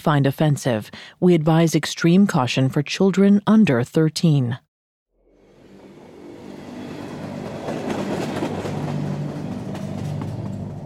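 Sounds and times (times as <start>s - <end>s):
speech: 0.0s - 4.6s
train rumbling along the tracks on a cold windy December night: 5.4s - 10.8s.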